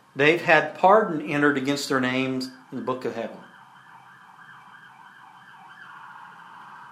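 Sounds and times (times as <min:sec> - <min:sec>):
soft hiss: 0:00.0 - 0:03.5
speech: 0:00.2 - 0:03.5
faint siren of a passing emergency vehicle: 0:03.4 - 0:06.9.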